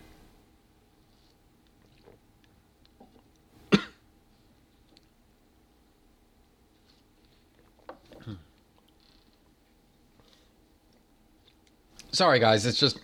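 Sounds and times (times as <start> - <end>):
person sipping water: 1.0 - 3.4, 7.2 - 9.0
person clearing throat: 3.7 - 4.0, 8.1 - 8.5
person coughing: 3.7 - 4.0, 8.2 - 8.5
speech: 12.2 - 13.0.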